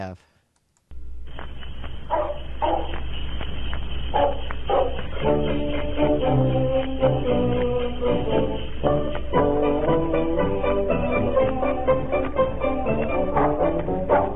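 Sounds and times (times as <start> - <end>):
speech: 0.0 - 0.3
sled dogs barking: 2.0 - 3.2, 4.0 - 5.6
sled dogs yipping: 2.0 - 5.8
bouncy band music: 5.0 - 14.3.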